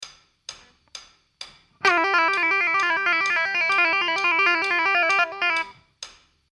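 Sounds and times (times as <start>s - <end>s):
guitar playing: 1.8s - 5.7s.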